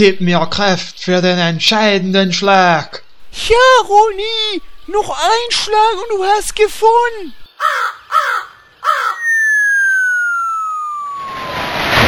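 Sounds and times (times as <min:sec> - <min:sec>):
speech: 0:00.0 - 0:09.0
giant crow cawing: 0:07.6 - 0:11.2
descending whistle of a falling crow: 0:08.4 - 0:11.9.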